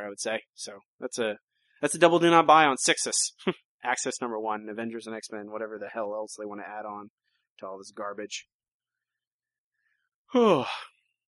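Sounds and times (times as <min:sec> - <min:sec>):
speech: 0:00.0 - 0:08.5, 0:10.3 - 0:10.9
person yawning: 0:10.3 - 0:10.9.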